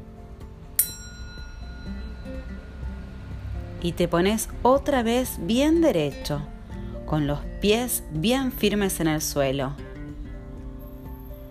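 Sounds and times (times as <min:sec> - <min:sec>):
single bell struck: 0:00.8 - 0:03.8
speech: 0:03.8 - 0:06.5, 0:07.1 - 0:09.9.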